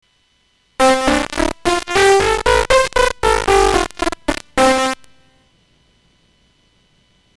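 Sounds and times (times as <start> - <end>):
digital piano playing a C major scale: 0.8 - 5.1.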